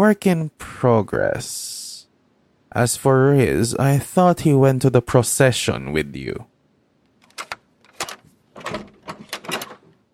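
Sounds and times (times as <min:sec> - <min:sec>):
speech: 0:00.0 - 0:01.8, 0:02.8 - 0:06.5
small house door swinging open creaking and rattling: 0:07.2 - 0:10.0.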